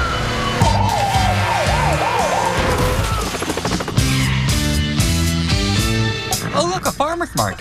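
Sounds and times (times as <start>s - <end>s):
police siren whooping during a police chase of a Toyota Prius: 0.0s - 3.6s
driving dramatic music with heavy rhythmic chords: 0.0s - 7.5s.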